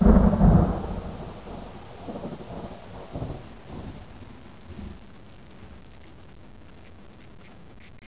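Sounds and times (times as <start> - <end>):
thunderstorm: 0.0 - 5.9.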